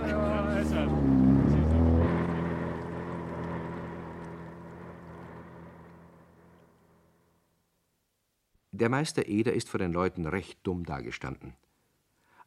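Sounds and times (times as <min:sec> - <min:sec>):
motorboat engine droning on water: 0:00.0 - 0:07.4
speech: 0:08.8 - 0:11.6.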